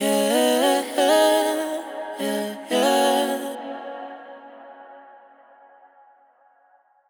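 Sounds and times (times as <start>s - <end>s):
wet vocal ad libs in G sharp minor: 0.0s - 4.0s.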